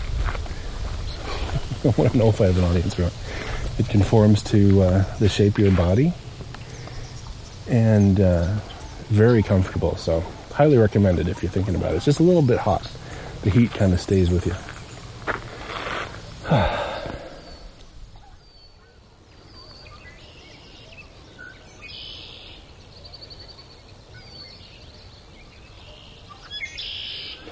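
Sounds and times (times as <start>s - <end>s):
many wild birds of various kinds singing outdoors: 0.0s - 27.5s
speech: 1.8s - 6.2s, 7.7s - 14.7s
harsh burst of bird calling: 4.9s - 24.6s, 25.8s - 27.5s.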